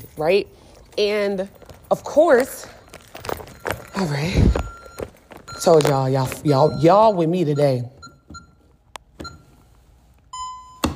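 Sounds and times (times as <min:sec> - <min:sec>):
speech: 0:00.2 - 0:02.8, 0:04.0 - 0:04.6, 0:05.6 - 0:08.0
electronic alarm beeping: 0:02.0 - 0:09.7, 0:10.3 - 0:10.9.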